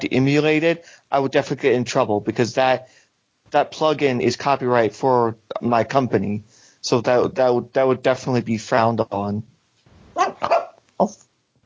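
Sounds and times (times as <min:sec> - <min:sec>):
speech: 0:00.0 - 0:09.5, 0:11.0 - 0:11.3
dog barking: 0:10.2 - 0:10.8.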